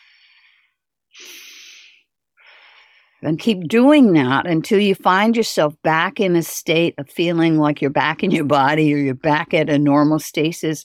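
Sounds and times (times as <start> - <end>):
breathing in through nose and out through pursed lips: 0.0 - 3.2
speech: 3.2 - 10.8.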